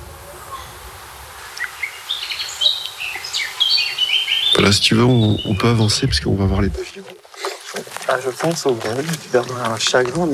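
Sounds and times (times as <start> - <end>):
Eurasian blackcap singing in rapid warbling phrases: 1.8 - 6.2
speech: 4.7 - 7.2, 8.1 - 10.3.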